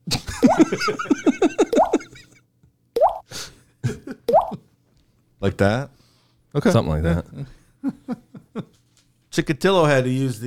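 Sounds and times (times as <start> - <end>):
laughter: 0.1 - 2.4, 3.8 - 4.3, 7.8 - 8.9
speech: 0.4 - 1.1, 5.4 - 8.2, 9.4 - 10.4
voice mimicking dripping with wet bubbly plops: 1.7 - 2.1, 3.0 - 3.2, 4.3 - 4.6.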